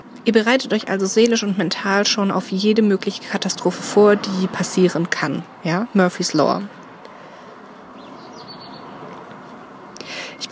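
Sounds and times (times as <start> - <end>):
outdoor hiss: 0.0 - 10.4
speech: 0.2 - 6.8
small bird soft chirps: 8.0 - 9.8.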